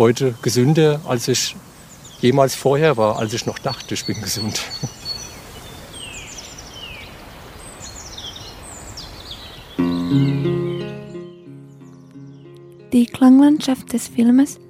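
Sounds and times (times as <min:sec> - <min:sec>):
speech: 0:00.0 - 0:05.0, 0:13.0 - 0:14.6
steady hiss of noise: 0:00.0 - 0:11.2
birds chirping in downward-sweeping bursts: 0:00.0 - 0:14.6
louder tonal musical passage: 0:09.8 - 0:14.6.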